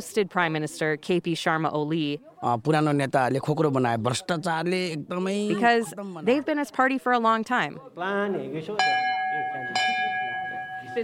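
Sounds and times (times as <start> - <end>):
speech: 0.0 - 9.1
large bell ringing: 8.8 - 11.0.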